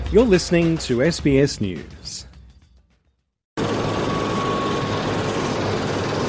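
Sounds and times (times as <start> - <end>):
speech: 0.1 - 2.2
helicopter engine and rotor roar taking off from an airport on the west coast of Denmark's Jutland peninsula: 3.6 - 6.2.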